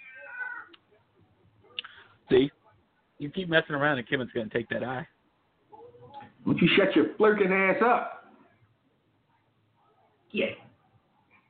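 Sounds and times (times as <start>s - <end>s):
cat meowing: 0.0s - 0.8s
speech: 2.3s - 2.6s, 3.2s - 5.1s, 6.4s - 8.1s.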